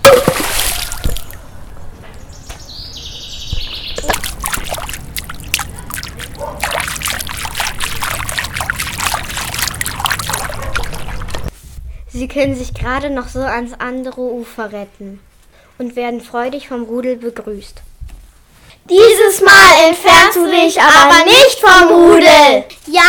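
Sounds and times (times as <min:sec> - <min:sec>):
water splashing and churning as people swim across to the other bank: 0:00.0 - 0:01.4, 0:04.0 - 0:11.5
speech: 0:12.2 - 0:17.9, 0:18.9 - 0:23.0.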